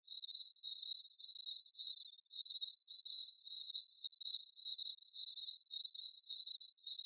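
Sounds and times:
cricket chirping in a forest: 0.1s - 7.0s.

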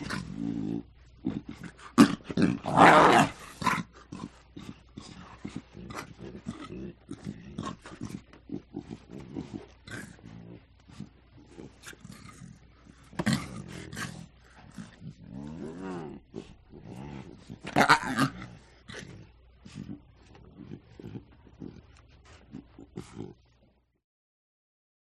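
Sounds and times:
two small lion cubs growling: 0.0s - 23.7s.

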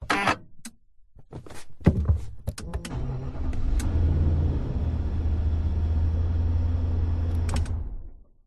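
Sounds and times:
Nissan Patrol engine starting from inside the car: 2.6s - 8.4s.

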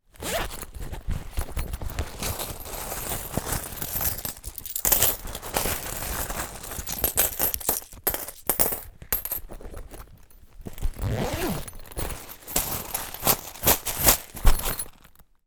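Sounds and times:
bum bag handle, closing and movement: 0.1s - 15.4s
bum bag zipper opening: 0.2s - 0.6s, 10.8s - 14.7s
money coins in bum bag: 2.4s - 9.4s, 11.2s - 14.8s.

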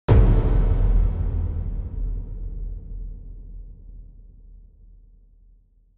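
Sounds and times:
big dark cinematic sound design hit: 0.1s - 4.7s.

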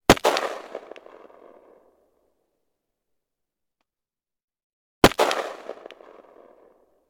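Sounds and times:
AR-15 rifle gunshot: 0.1s - 1.6s, 5.0s - 6.7s.

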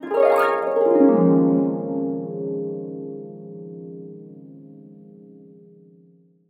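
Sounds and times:
harp glissando: 0.0s - 2.6s.

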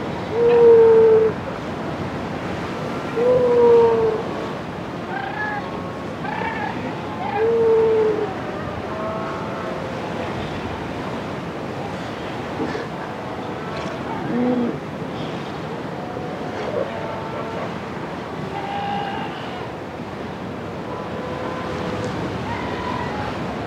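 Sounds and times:
sea lions bleating on rocks beside the Pacific Ocean in Chile: 0.2s - 1.4s, 3.0s - 11.2s, 11.8s - 19.8s, 20.7s - 23.5s.

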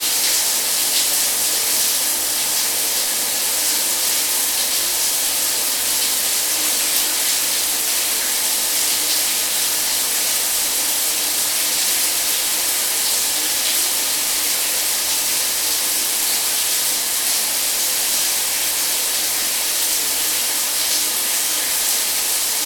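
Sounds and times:
household shower running: 0.0s - 22.6s.

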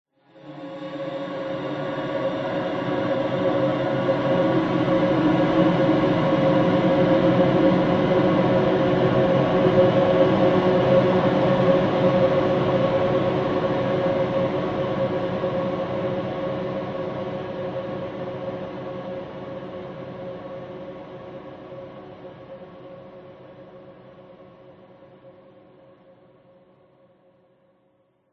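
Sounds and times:
horror swell of long angelic choir: 0.3s - 18.2s.

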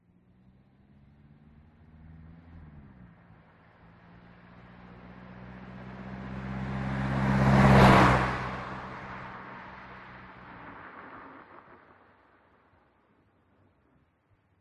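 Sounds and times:
Citroen C2 passing by: 0.4s - 12.6s.

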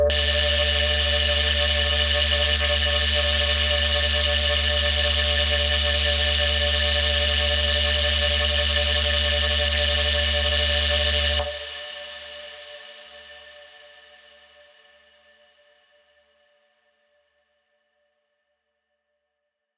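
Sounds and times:
corrupt data stream atmosphere: 0.1s - 12.9s.

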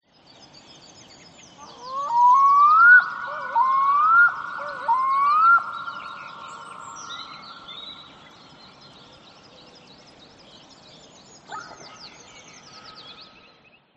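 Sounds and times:
Black-throated diver calling: 1.6s - 7.4s.

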